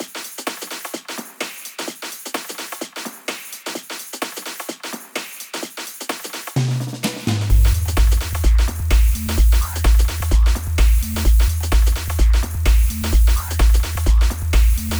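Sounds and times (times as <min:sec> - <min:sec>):
drum fill: 0:03.7 - 0:14.9.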